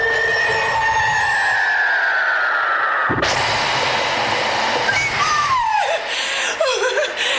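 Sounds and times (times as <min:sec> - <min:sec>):
long falling whistle: 0:00.0 - 0:04.0, 0:04.7 - 0:06.1
witch shrieking howls and cackling cries: 0:00.0 - 0:04.0, 0:04.6 - 0:07.1
sudden loud rushing burst: 0:02.8 - 0:06.6.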